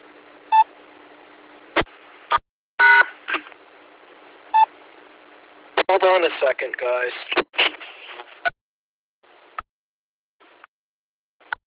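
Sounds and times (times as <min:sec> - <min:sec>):
short electronic dialing tones from a phone patch: 0:02.8 - 0:03.1
speech: 0:05.9 - 0:07.5.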